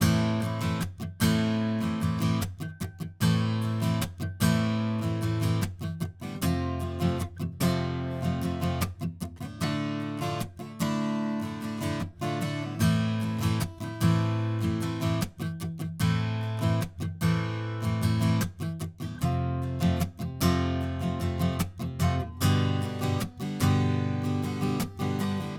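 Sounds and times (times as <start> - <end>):
acoustic guitar chorus in A minor at 150 bpm: 0.0 - 25.5.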